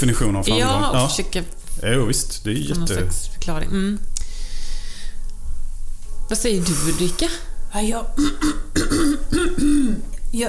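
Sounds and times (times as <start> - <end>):
speech: 0.0 - 4.1, 6.3 - 10.4
person clearing throat: 8.2 - 10.1.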